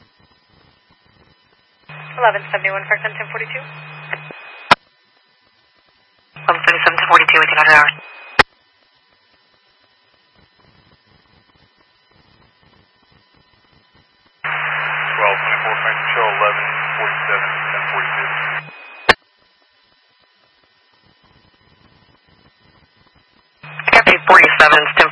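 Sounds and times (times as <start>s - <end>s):
low steady hum: 0.1s - 25.1s
handheld radio static crackling: 0.7s - 4.8s, 5.8s - 8.6s, 9.2s - 19.2s, 19.8s - 25.1s
radio click: 1.9s - 4.8s, 6.4s - 8.5s, 14.5s - 19.2s, 23.6s - 25.1s
speech: 2.2s - 3.9s.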